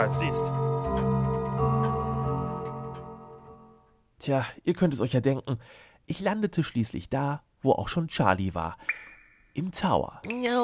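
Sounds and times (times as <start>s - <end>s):
speech: 0.0s - 0.6s, 4.2s - 10.6s
steady resonant tonal drone: 0.0s - 3.8s
grandfather clock ticking: 0.0s - 4.0s.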